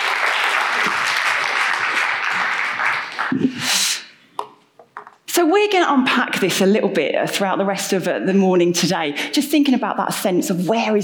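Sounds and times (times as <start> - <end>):
room full of people applauding: 0.0 - 3.5
speech: 5.4 - 11.0.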